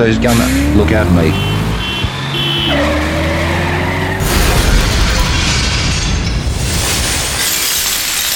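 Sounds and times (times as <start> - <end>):
speech: 0.0 - 1.6
tank's heavy engine rumbling and grinding: 0.0 - 6.4
car glass shattering: 4.6 - 8.3.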